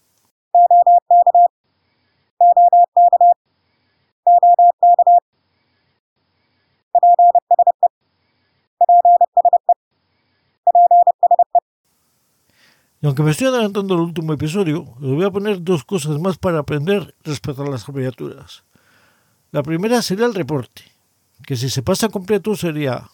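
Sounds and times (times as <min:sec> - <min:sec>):
Morse code tones: 0:00.6 - 0:01.5, 0:02.4 - 0:03.4, 0:04.3 - 0:05.2, 0:07.0 - 0:07.9, 0:08.8 - 0:09.8, 0:10.7 - 0:11.6
speech: 0:13.0 - 0:18.7, 0:19.5 - 0:23.1.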